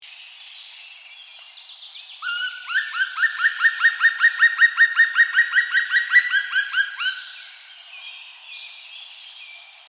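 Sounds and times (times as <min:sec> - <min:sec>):
male black woodpecker territorial call: 0:02.2 - 0:07.7.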